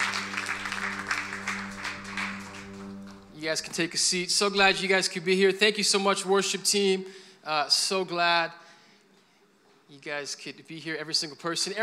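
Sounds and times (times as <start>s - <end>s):
audience clapping hands: 0.0s - 4.1s
speech: 3.4s - 8.6s, 9.9s - 11.8s.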